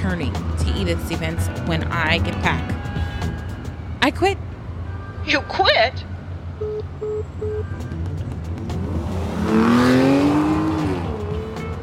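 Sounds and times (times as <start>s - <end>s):
car being driven fast: 0.0s - 4.8s, 7.8s - 11.8s
road noise: 0.0s - 11.8s
speech: 0.1s - 3.0s, 4.0s - 4.5s, 5.3s - 7.9s.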